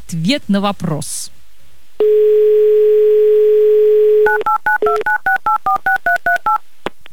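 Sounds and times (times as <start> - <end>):
speech: 0.1 - 1.4
telephone dial tone: 2.0 - 6.6
telephone keypad tones as a number is dialed: 4.2 - 6.6.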